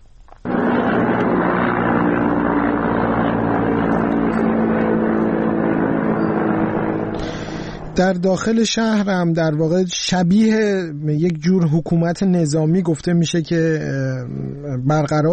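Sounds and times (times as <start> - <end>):
helicopters roaring overhead over a city: 0.4 - 10.0
speech: 8.0 - 15.3.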